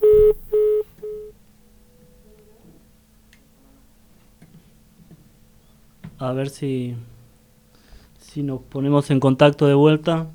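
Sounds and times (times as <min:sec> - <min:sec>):
low hiss: 0:00.0 - 0:01.3
phone line beeps after a telephone call cut off: 0:00.0 - 0:01.3
speech: 0:06.2 - 0:07.1, 0:08.4 - 0:10.3.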